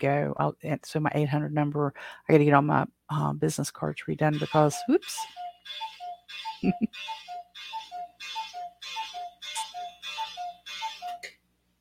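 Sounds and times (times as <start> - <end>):
speech: 0.0 - 5.9, 6.6 - 7.2
clock chiming the hour: 4.3 - 11.3.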